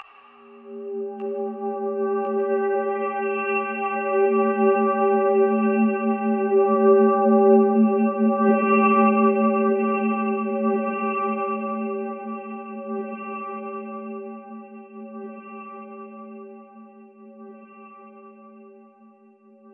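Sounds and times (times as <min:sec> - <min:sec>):
atmospheric synth pads: 0:00.0 - 0:13.4.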